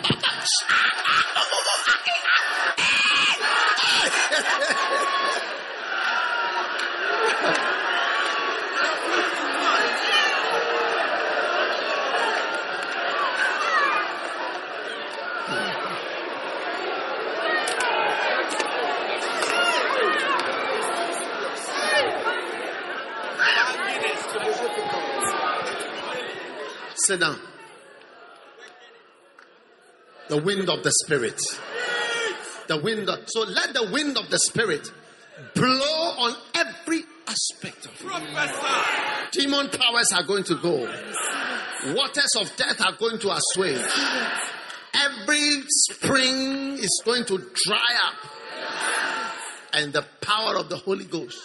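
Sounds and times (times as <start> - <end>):
bursts of laughter: 0.0 - 5.9
large crowd shouting and screaming: 0.0 - 36.4, 37.9 - 49.9
speech: 27.1 - 27.5, 30.3 - 31.7, 32.7 - 48.5, 49.8 - 51.4.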